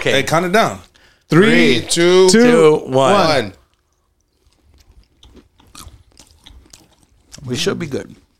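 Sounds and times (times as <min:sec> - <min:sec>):
speech: 0:00.0 - 0:03.6, 0:07.4 - 0:08.2
crunching and chewing peanuts: 0:03.6 - 0:08.3.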